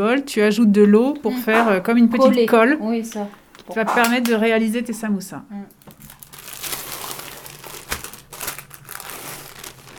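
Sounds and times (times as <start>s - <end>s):
speech: 0.0s - 5.9s
thin brick pastry sheets crinkling as they are unfolded: 5.7s - 9.9s.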